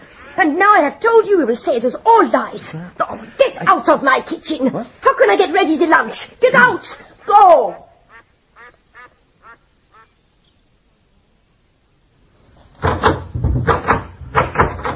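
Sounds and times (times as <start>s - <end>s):
speech: 0.4s - 7.8s
short squeaky quack-like calls: 8.1s - 10.1s
stuck door being yanked, rattling and banging: 12.8s - 14.9s.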